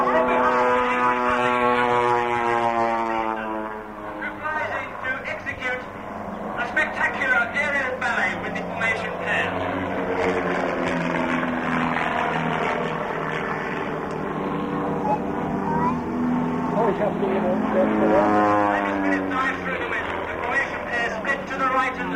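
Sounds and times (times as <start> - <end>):
people talking: 0.0 - 0.7, 4.2 - 5.9, 6.6 - 9.6, 15.0 - 16.0, 16.7 - 22.1
propeller aircraft engine roar at an air display, possibly Mitchell bombers: 0.0 - 22.1.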